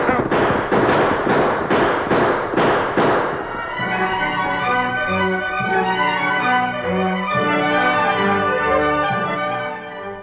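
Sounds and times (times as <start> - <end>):
gunshots in a radio-drama gunfight: 0.0 - 6.3
sustained music: 2.3 - 10.2.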